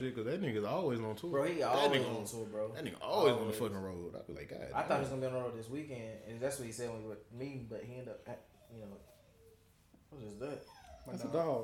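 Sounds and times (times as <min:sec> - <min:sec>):
speech: 0:00.0 - 0:09.2, 0:10.1 - 0:11.6
dog whimpering: 0:08.1 - 0:11.6.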